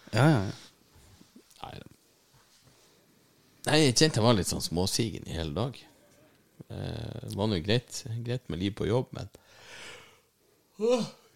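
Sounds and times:
speech: 0:00.1 - 0:00.6, 0:03.7 - 0:05.9, 0:06.6 - 0:09.9, 0:10.8 - 0:11.2
person yawning: 0:10.8 - 0:11.3.

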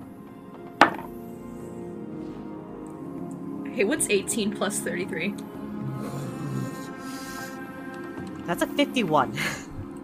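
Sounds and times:
dice hitting a hard tabletop: 0:00.8 - 0:01.1
speech: 0:03.8 - 0:06.2, 0:08.5 - 0:09.6.

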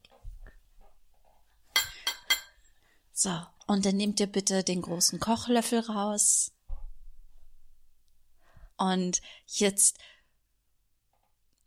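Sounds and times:
bowls clinking together while people prepare to cook: 0:01.8 - 0:02.7
speech: 0:03.2 - 0:06.6, 0:08.8 - 0:10.1.

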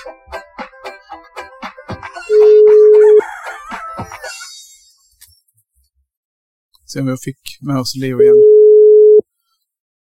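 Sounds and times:
telephone busy tone after a dropped call: 0:02.3 - 0:03.1, 0:08.2 - 0:09.2
speech: 0:06.9 - 0:08.5.

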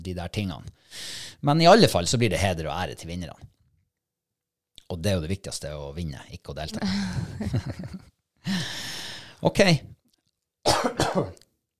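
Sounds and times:
speech: 0:00.0 - 0:03.6, 0:04.9 - 0:10.0, 0:10.6 - 0:11.4
laughter: 0:06.8 - 0:08.1
loud harsh cough: 0:10.7 - 0:11.4.

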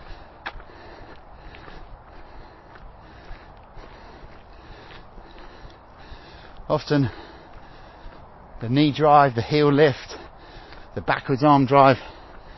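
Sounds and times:
sharp sniffing intakes of breath after a workout: 0:00.0 - 0:08.6, 0:10.0 - 0:11.0, 0:12.0 - 0:12.5
speech: 0:06.7 - 0:07.2, 0:08.6 - 0:10.1, 0:11.0 - 0:12.1.

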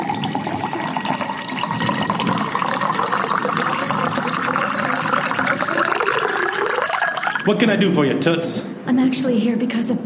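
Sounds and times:
tequila pouring from a bottle into a glass: 0:00.0 - 0:07.5
speech: 0:07.4 - 0:10.0.

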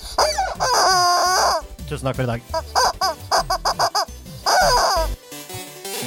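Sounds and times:
goose honking: 0:00.1 - 0:01.7, 0:02.5 - 0:05.2
speech: 0:01.9 - 0:02.8.

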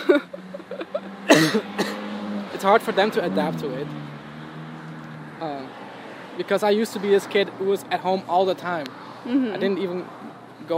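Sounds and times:
speech: 0:00.1 - 0:00.4, 0:01.5 - 0:01.8, 0:02.6 - 0:04.2, 0:05.4 - 0:05.8, 0:06.4 - 0:10.7
person coughing: 0:01.3 - 0:02.1.

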